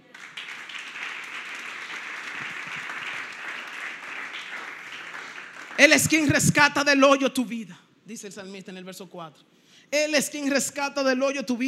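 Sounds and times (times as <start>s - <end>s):
audience applauding: 0.0s - 6.3s
speech: 5.8s - 11.6s.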